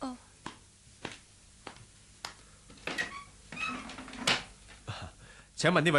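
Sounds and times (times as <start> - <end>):
footsteps: 0.4 - 4.8
door rattling and creaking as opened to answer a knock: 2.8 - 4.5
speech: 5.6 - 5.9.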